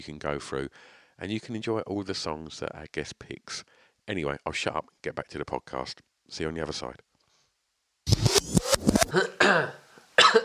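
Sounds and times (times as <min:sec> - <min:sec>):
speech: 0:00.0 - 0:07.1, 0:08.2 - 0:10.4
harsh coughing fit: 0:09.1 - 0:10.4.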